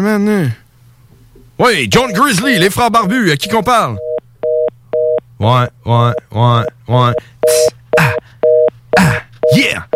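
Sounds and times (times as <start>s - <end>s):
speech: 0.0s - 0.6s, 1.6s - 4.1s, 5.4s - 7.8s, 9.0s - 9.9s
telephone busy signal two-tone beeps: 2.0s - 5.2s.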